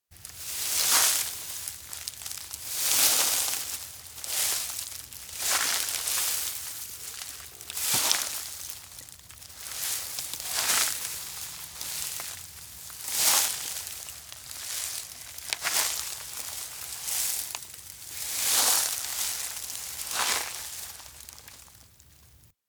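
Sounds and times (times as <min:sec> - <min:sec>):
footsteps walking through grassland at night: 0:00.2 - 0:22.2.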